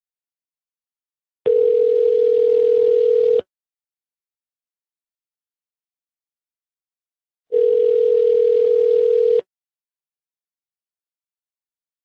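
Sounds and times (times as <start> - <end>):
telephone ringing unanswered on the line: 1.5 - 3.5, 7.5 - 9.5.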